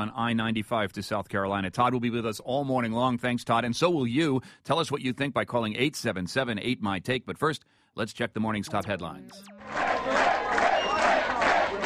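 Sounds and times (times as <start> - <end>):
speech: 0.0 - 10.4
crowd cheering at a campaign headquarters on primary night: 9.4 - 11.8.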